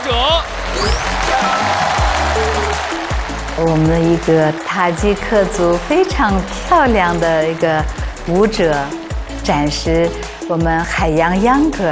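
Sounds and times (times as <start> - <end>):
audience applause for dancers at an ethnic dance competition: 0.0 - 9.4
speech: 3.6 - 11.9.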